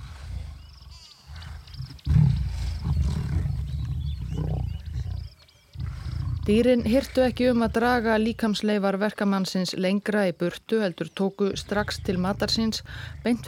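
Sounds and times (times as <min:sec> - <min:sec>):
maneless male man-eating lion roaring and growling: 0:01.3 - 0:08.4, 0:11.5 - 0:13.4
speech: 0:06.5 - 0:13.4.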